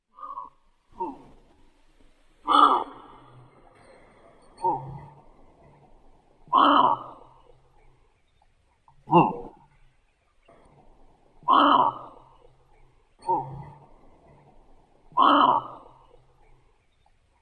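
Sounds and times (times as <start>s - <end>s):
person imitating cawing: 0.2s - 1.4s, 2.5s - 3.4s, 6.5s - 7.4s, 11.4s - 12.4s, 13.2s - 13.9s, 15.1s - 16.1s.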